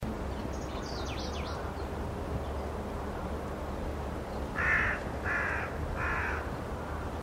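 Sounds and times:
steady low rumbling noise: 0.0 - 7.2
bird cawing: 4.6 - 7.2.

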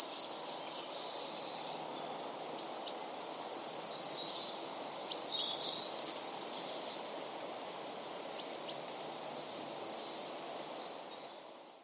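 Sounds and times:
Eurasian blue tit calling: 0.0 - 0.7, 2.6 - 7.4, 8.4 - 10.4
soft steady background hiss: 0.0 - 11.8.

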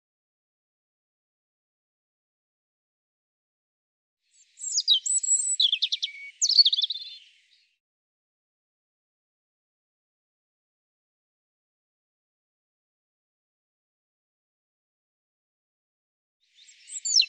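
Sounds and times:
European robin singing: 4.3 - 7.8, 16.5 - 17.2.

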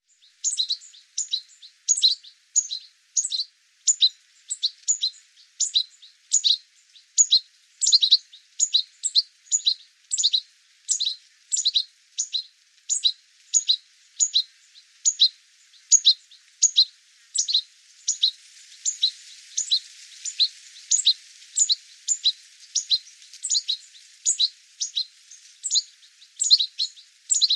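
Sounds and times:
sharp high bird chirps: 0.4 - 6.6, 7.2 - 27.5.

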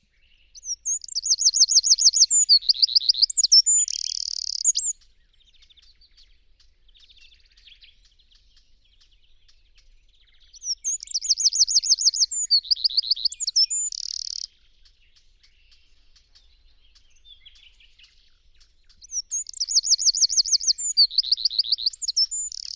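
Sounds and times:
bird calling rapid high-pitched looping rolling trilled notes: 0.5 - 5.9, 10.6 - 14.6, 15.6 - 22.7.

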